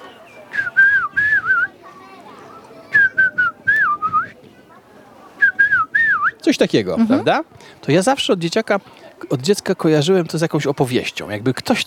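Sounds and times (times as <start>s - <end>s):
person whistling an imitation of a blackbird's song: 0.5s - 1.7s, 3.0s - 4.4s
speech: 6.5s - 11.8s.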